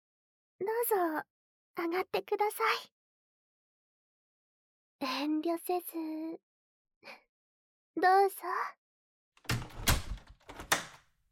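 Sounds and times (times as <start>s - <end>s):
speech: 0.6s - 3.0s, 5.0s - 7.2s, 8.0s - 8.8s
home entrance door slamming shut: 9.5s - 11.0s.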